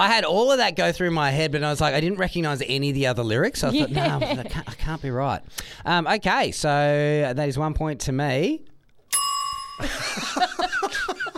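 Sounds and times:
speech: 0.0s - 8.7s, 9.8s - 11.0s
laughter: 3.6s - 4.8s, 9.8s - 11.3s
bright clear bell ding: 9.1s - 10.6s.

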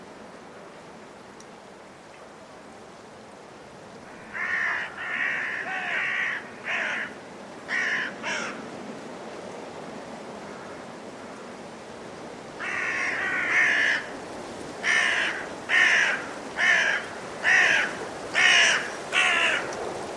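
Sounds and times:
blustery force 6 wind in winter at Woodchester Park, Gloucestershire: 0.0s - 20.1s
carrion crows cawing in trees before roosting in winter: 4.1s - 8.6s, 12.6s - 14.1s, 14.8s - 19.8s.

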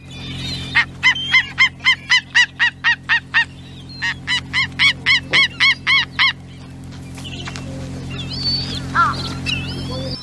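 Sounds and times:
steady low hum: 0.0s - 10.2s
Steller's sea eagle from the Russian Far East calling in honking barks: 0.7s - 6.4s, 8.0s - 10.1s.

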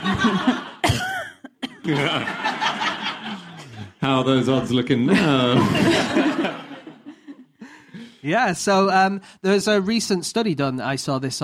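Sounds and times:
laughter: 0.0s - 0.9s, 1.7s - 8.2s
speech: 0.1s - 0.7s, 1.9s - 2.5s, 4.1s - 6.3s, 8.2s - 11.4s
person coughing: 0.8s - 1.9s.

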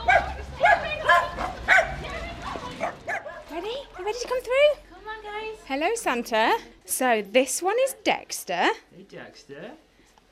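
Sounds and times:
dog barking: 0.0s - 2.0s, 2.8s - 4.1s
speech: 5.7s - 10.3s.

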